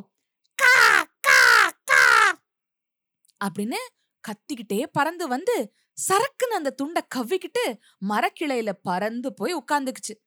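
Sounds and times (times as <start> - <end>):
human voice imitating crow caws: 0.6 - 2.4
speech: 3.4 - 10.2.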